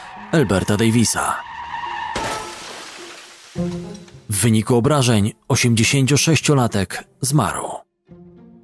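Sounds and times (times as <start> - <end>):
car tires skidding with high squeal: 0.0 - 2.7
car crash: 0.0 - 4.3
speech: 0.2 - 1.6, 3.6 - 7.8
debris scattering: 2.0 - 4.3
glass shattering: 2.0 - 4.3.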